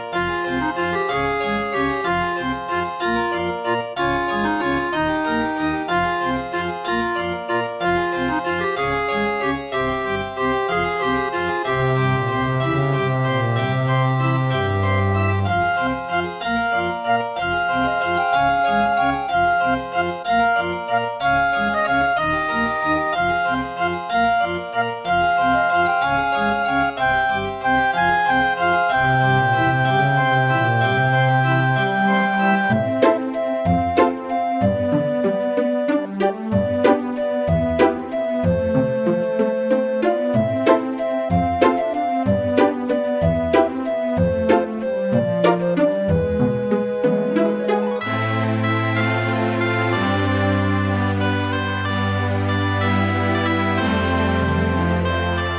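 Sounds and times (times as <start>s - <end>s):
synthesizer music track: 0.1s - 55.5s.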